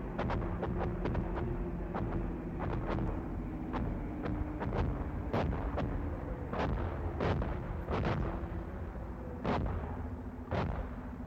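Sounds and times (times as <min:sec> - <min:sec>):
German anti-aircraft gunfire shooting at Allied aircraft behind a bean field: 0:00.1 - 0:11.2.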